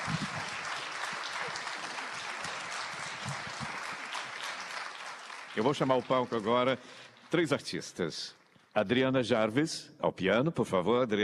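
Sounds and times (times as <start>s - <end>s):
crowd of many hands applauding steadily: 0.0s - 8.5s
speech: 5.6s - 11.2s.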